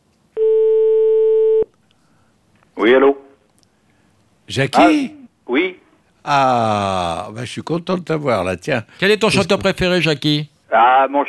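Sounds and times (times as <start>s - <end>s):
telephone line tone while calling someone: 0.4s - 1.7s
speech: 2.8s - 3.2s, 4.5s - 5.2s, 6.3s - 11.2s.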